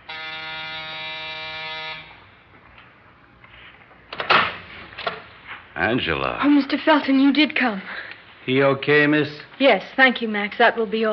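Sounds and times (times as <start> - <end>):
building door buzzer electric drone: 0.0 - 2.4
speech: 5.8 - 11.1.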